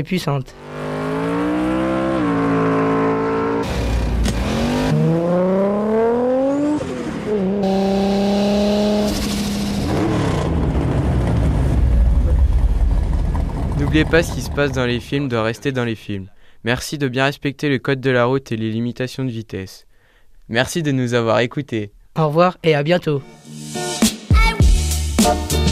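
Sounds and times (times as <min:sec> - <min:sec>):
speech: 0:00.0 - 0:00.8, 0:14.0 - 0:19.9, 0:20.5 - 0:23.8, 0:25.3 - 0:25.6
Nissan Skyline R34 engine revving through gear changes: 0:00.5 - 0:15.2.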